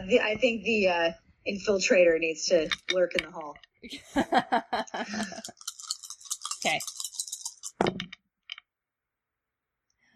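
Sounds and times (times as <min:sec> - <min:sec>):
speech: 0:00.0 - 0:05.7, 0:06.6 - 0:07.0
laughter: 0:03.9 - 0:05.6
dice clattering across a hard tabletop: 0:05.5 - 0:08.1.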